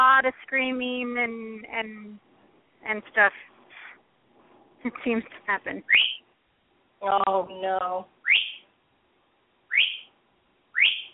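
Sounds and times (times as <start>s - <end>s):
speech: 0.2s - 3.5s, 4.8s - 6.2s, 7.0s - 8.2s
bird calling with short bright upward whistles: 5.9s - 6.3s, 8.2s - 8.7s, 9.7s - 10.1s, 10.7s - 11.1s.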